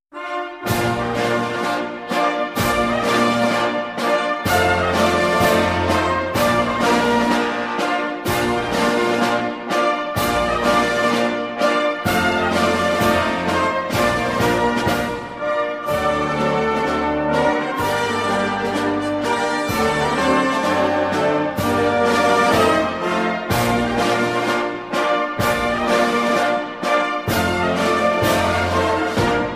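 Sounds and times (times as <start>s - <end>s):
national anthem: 0.1s - 29.5s.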